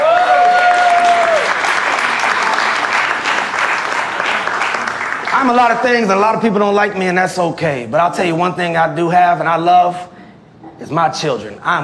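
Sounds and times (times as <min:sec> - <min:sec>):
crowd clapping and applauding: 0:00.0 - 0:05.8
speech: 0:05.4 - 0:10.2, 0:10.8 - 0:11.8.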